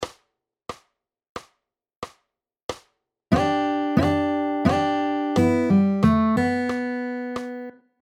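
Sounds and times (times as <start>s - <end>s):
pentatonic riffs: 3.3s - 7.7s.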